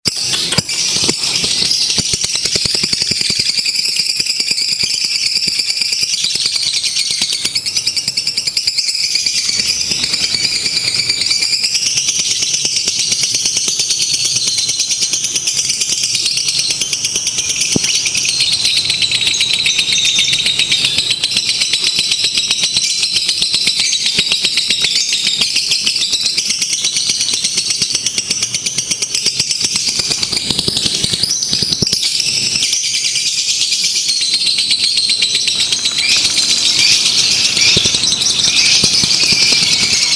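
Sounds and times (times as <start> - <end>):
lovebird singing in a simulated contest: 0.0 - 40.1.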